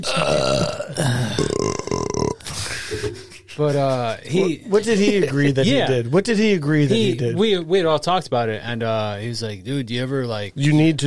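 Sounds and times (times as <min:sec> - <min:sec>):
speech: 0:00.0 - 0:01.5, 0:03.6 - 0:11.0
person burping into the microphone: 0:00.0 - 0:03.3.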